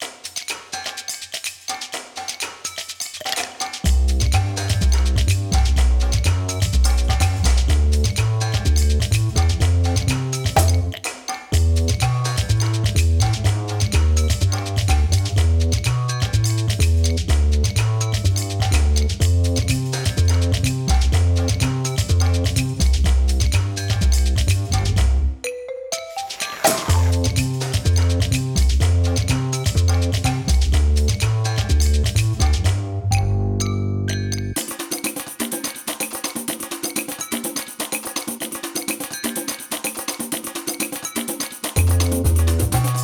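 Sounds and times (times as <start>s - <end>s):
drum and bass music: 3.6s - 11.0s, 11.6s - 25.4s, 26.3s - 33.4s, 34.3s - 43.0s.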